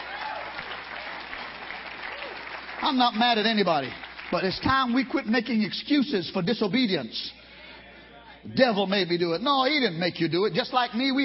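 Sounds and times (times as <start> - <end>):
audience clapping hands: 0.0 - 5.5
speech: 2.8 - 7.4, 8.4 - 11.2.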